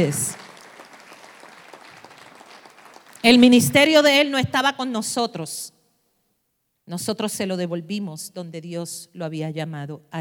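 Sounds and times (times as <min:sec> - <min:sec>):
speech: 0:00.0 - 0:00.4, 0:03.2 - 0:05.8, 0:06.9 - 0:10.1
crowd applauding: 0:00.0 - 0:03.5.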